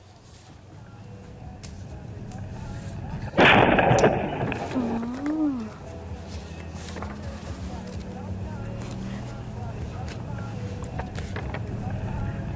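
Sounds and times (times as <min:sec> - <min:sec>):
road noise: 0:00.0 - 0:12.5
car crash at intersection: 0:03.3 - 0:05.4
scraping rattling debris: 0:03.3 - 0:05.8.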